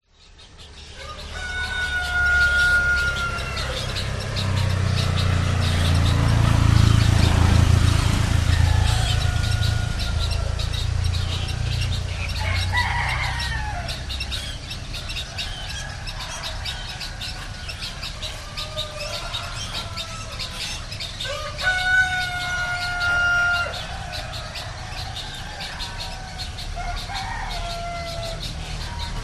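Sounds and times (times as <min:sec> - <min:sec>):
traffic in a public place in an Indonesian village: 0:00.0 - 0:29.2
white herons in an Indonesian village: 0:00.0 - 0:29.2
roosters in an Indonesian village: 0:00.2 - 0:29.2.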